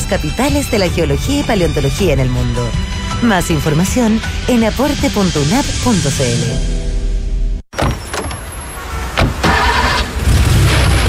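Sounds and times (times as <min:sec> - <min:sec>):
speech: 0:00.1 - 0:06.8
mechanical clunks: 0:07.7 - 0:08.6
car engine starting: 0:08.3 - 0:11.0.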